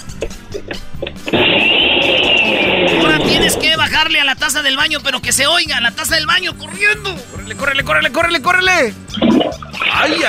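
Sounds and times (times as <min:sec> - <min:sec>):
blender running with high mechanical whine: 0:01.4 - 0:03.5
speech: 0:04.0 - 0:10.2.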